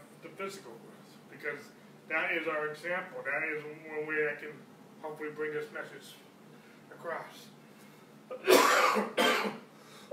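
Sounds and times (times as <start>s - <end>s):
speech: 0.4s - 6.2s, 7.0s - 7.6s, 8.3s - 10.1s
person coughing: 8.3s - 10.1s.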